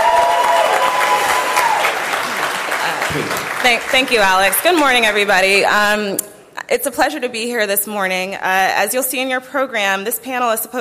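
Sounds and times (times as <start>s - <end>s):
audience applause and cheering at a conference panel in San Francisco: 0.0s - 5.5s
speech: 3.1s - 10.7s.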